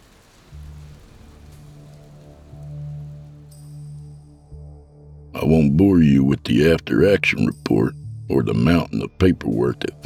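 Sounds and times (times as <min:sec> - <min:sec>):
low droning hum: 0:00.0 - 0:05.3
steady rain hissing: 0:00.0 - 0:10.0
speech: 0:05.4 - 0:10.0.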